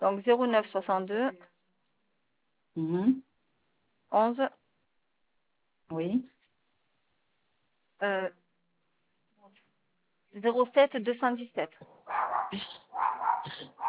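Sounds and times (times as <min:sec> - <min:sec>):
speech: 0:00.0 - 0:01.5, 0:02.8 - 0:03.3, 0:04.1 - 0:04.6, 0:05.9 - 0:06.4, 0:08.0 - 0:08.4, 0:10.4 - 0:13.6
agitated dog barking and yelping: 0:12.0 - 0:13.8.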